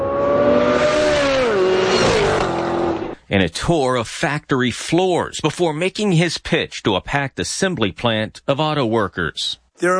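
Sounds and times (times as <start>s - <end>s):
race car engines roaring in high-speed racing demonstration: 0.0s - 3.2s
speech: 3.3s - 9.9s.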